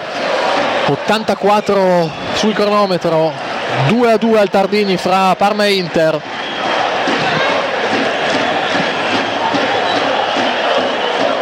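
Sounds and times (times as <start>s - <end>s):
football stadium crowd shouting and jeering in the stands after a disputed foul call: 0.0s - 11.4s
speech: 0.9s - 6.4s.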